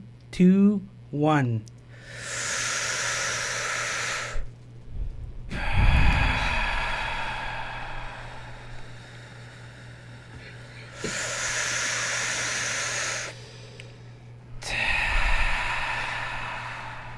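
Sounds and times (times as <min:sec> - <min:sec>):
low steady hum: 0:00.0 - 0:17.1
speech: 0:00.3 - 0:02.4
deep breaths in and out during a guided relaxation exercise: 0:01.8 - 0:04.6, 0:05.4 - 0:17.1.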